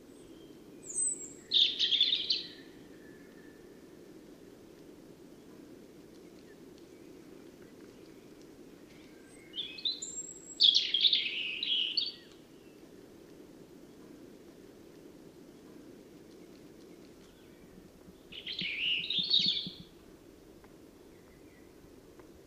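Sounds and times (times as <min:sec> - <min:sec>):
European robin Erithacus rubecula singing: 0:00.1 - 0:03.6, 0:06.2 - 0:12.8, 0:16.4 - 0:20.0.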